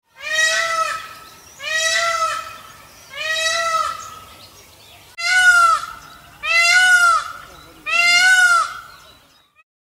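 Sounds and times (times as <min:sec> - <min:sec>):
peacock calling: 0:00.1 - 0:09.6.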